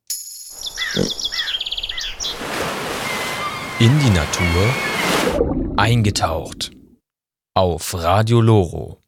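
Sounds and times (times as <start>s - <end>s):
common swifts calling with shrill screaming trills: 0.5s - 5.4s
speech: 1.0s - 1.3s, 3.8s - 6.8s, 7.6s - 9.0s.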